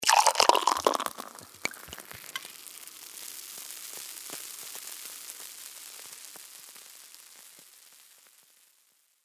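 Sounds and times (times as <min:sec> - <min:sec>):
champagne pouring from a bottle and fizzing: 0:00.0 - 0:02.7.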